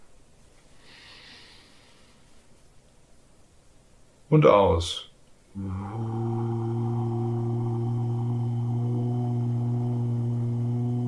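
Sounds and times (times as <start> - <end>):
faint hiss: 0.0 - 11.0
deep inhale through the nose: 0.8 - 2.4
speech: 4.3 - 6.2.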